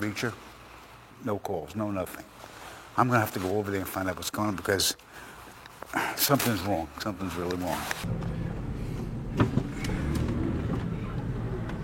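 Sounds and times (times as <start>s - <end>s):
speech: 0.0s - 0.5s, 1.2s - 5.3s, 5.9s - 8.6s, 9.4s - 9.6s
car arriving and engine idling: 8.0s - 11.8s.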